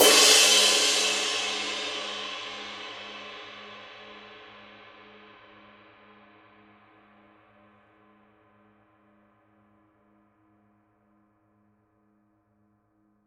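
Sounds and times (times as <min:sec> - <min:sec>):
22-inch dark crisp ride cymbal played on edge: 0:00.0 - 0:02.9.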